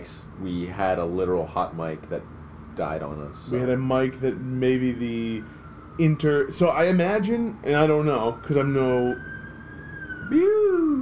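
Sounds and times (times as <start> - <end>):
speech: 0.0 - 9.3, 10.3 - 11.0
wailing emergency vehicle siren passing outside: 3.3 - 11.0.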